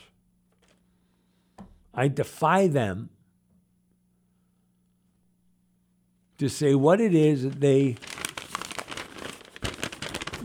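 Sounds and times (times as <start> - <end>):
speech: 2.0 - 3.2, 6.4 - 8.1
paper sheet rustling and crinkling while handled: 7.1 - 10.4.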